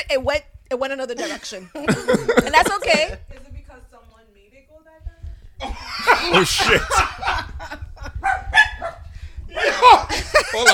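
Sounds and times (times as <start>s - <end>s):
speech: 0.0s - 3.5s, 5.6s - 8.4s, 9.6s - 10.7s
laughter: 1.2s - 3.2s, 5.8s - 8.2s, 9.5s - 10.7s
dog barking: 8.2s - 9.1s.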